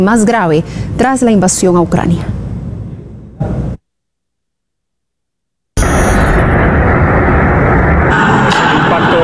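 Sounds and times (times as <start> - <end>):
speech: 0.0 - 2.4, 3.4 - 3.7
sustained roaring broadband rumble: 0.0 - 3.8, 5.8 - 9.2
drone striking apartment building, explosion: 5.8 - 9.2.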